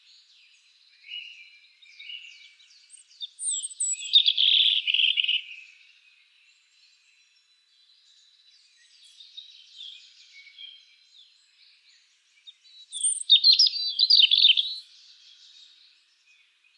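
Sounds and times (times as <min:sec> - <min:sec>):
European robin Erithacus rubecula singing: 0:02.0 - 0:05.5, 0:12.5 - 0:15.7.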